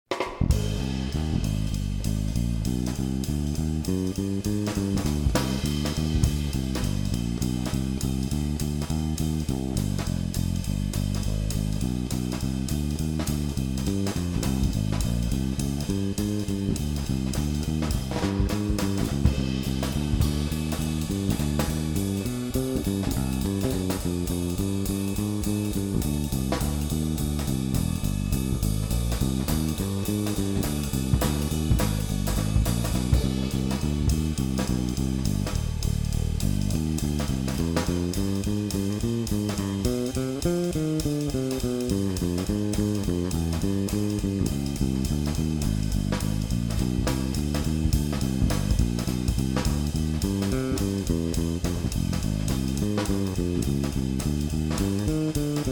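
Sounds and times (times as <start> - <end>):
blues music in C minor: 0.1 - 55.7.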